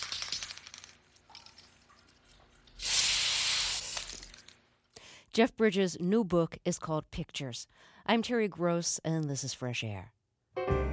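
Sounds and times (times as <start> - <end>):
aerosol spray-on hair product sprayed on someone's head: 2.8 - 4.1
speech: 5.3 - 10.8.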